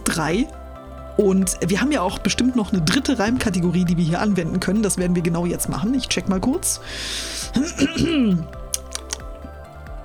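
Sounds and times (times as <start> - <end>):
speech: 0.2 - 0.6, 1.2 - 8.6
computer keyboard clicks while typing a prompt: 8.8 - 9.3.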